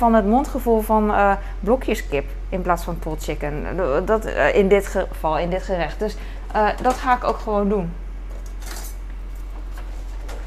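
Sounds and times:
speech: 0:00.0 - 0:08.0
low steady hum: 0:00.0 - 0:10.4
kitchen scissors clinking and rattling among utensils: 0:08.5 - 0:09.0.

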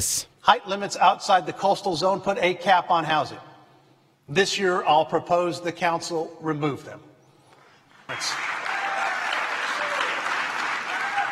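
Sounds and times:
speech: 0:00.0 - 0:03.5, 0:04.3 - 0:07.1, 0:08.1 - 0:08.5
large crowd applauding at a State of the City speech: 0:08.1 - 0:11.2.

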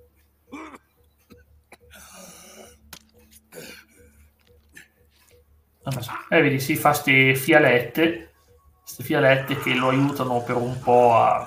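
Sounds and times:
low steady hum: 0:00.0 - 0:11.4
harsh raspy coughing fits from a video game trailer: 0:00.5 - 0:02.8, 0:03.5 - 0:04.0
throat clearing: 0:00.5 - 0:02.8
strained breaths: 0:01.8 - 0:05.4
speech: 0:05.9 - 0:08.3, 0:09.0 - 0:11.4.

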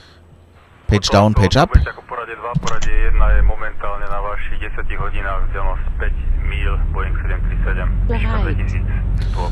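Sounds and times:
speech: 0:00.9 - 0:09.4
airplane engines in a flight game humming and rumbling: 0:02.0 - 0:09.4.

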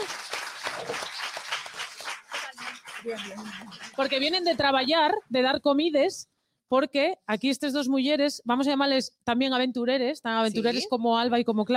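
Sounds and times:
audience applause: 0:00.0 - 0:04.6
speech: 0:03.0 - 0:11.7.

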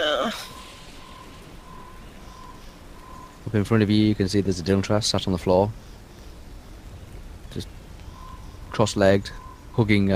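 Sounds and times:
rain: 0:00.0 - 0:10.1
wind: 0:00.0 - 0:10.1
faint high whistle: 0:00.1 - 0:03.3
speech: 0:00.2 - 0:00.5, 0:03.5 - 0:05.9, 0:07.6 - 0:07.8, 0:08.8 - 0:10.1.

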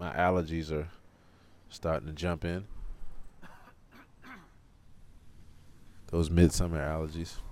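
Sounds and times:
faint outdoor noise: 0:00.0 - 0:07.4
speech: 0:00.2 - 0:01.0, 0:01.7 - 0:02.8, 0:06.1 - 0:07.4
raspy throat clearing: 0:03.4 - 0:04.6.

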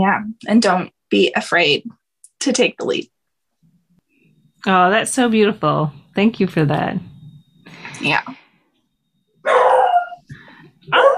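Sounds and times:
speech: 0:00.0 - 0:03.1, 0:04.6 - 0:07.1, 0:08.0 - 0:08.4, 0:09.4 - 0:09.8, 0:10.9 - 0:11.1
dog barking: 0:09.4 - 0:10.2, 0:10.9 - 0:11.1.

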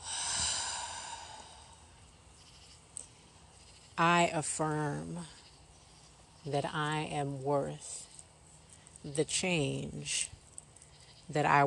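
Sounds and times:
breath released audibly as a soft sighing exhale: 0:00.0 - 0:01.9
speech: 0:04.0 - 0:05.4, 0:06.4 - 0:08.0, 0:09.0 - 0:10.4, 0:11.3 - 0:11.6.

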